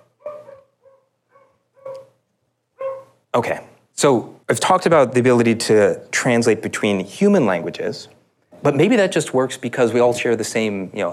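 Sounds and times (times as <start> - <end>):
two dogs barking: 0.0 - 2.2, 2.8 - 3.2
speech: 3.3 - 11.1.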